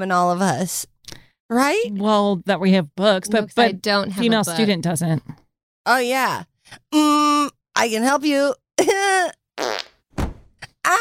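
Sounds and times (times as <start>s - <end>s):
speech: 0.0s - 0.9s, 1.5s - 9.7s
loud farts in a basement: 9.6s - 10.0s.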